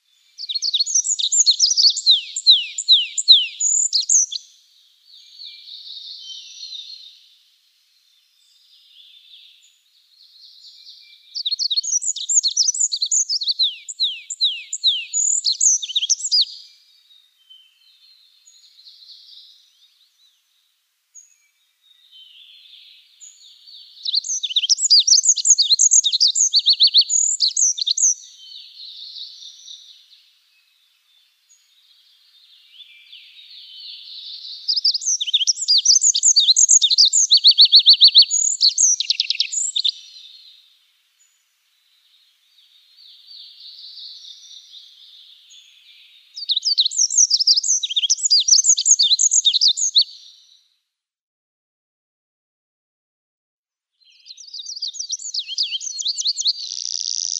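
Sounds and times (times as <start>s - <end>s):
Olive-backed Pipit singing: 0.4s - 4.5s, 10.5s - 16.8s, 21.2s - 30.1s, 32.7s - 40.5s, 42.6s - 50.6s, 54.0s - 57.3s.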